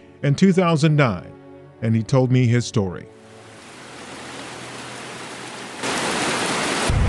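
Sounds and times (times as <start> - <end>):
speech: 0.2 - 3.2
rainwater running down a sloped walkway: 3.3 - 7.0.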